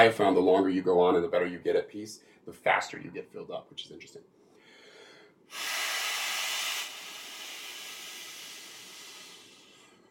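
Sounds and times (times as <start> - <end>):
speech: 0.0 - 4.4, 5.5 - 5.7
breath blown into a microphone: 4.7 - 10.1.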